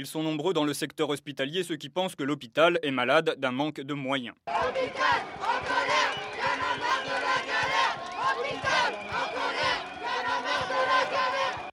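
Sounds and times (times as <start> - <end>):
speech: 0.0 - 6.2
crowd of protesters chanting a slogan in unison: 4.5 - 11.7.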